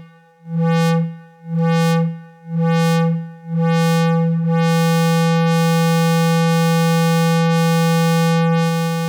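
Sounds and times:
modular synthesizer repeating a bright buzzy note: 0:00.6 - 0:09.0.

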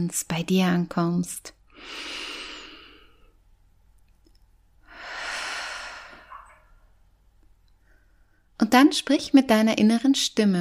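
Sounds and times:
speech: 0:00.0 - 0:02.3, 0:08.6 - 0:10.5
deep breaths in and out during a guided meditation: 0:01.7 - 0:03.4, 0:04.8 - 0:06.9, 0:07.7 - 0:08.6.

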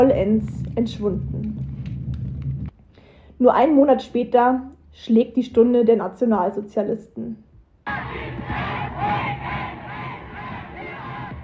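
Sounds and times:
speech: 0:00.0 - 0:01.7, 0:03.4 - 0:09.5
large crowd cheering and shouting at a torchlight march: 0:07.9 - 0:11.4.

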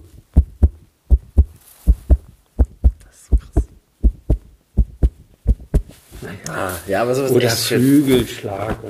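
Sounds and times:
foley heartbeat made with a leather cloth: 0:00.0 - 0:06.2
speech: 0:06.4 - 0:08.8.

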